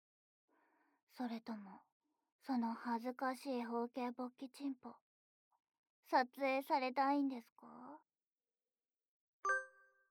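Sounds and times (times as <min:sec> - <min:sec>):
speech: 0:01.1 - 0:05.0, 0:06.0 - 0:08.1
phone app chime marking the end of a screen recording: 0:09.5 - 0:10.0.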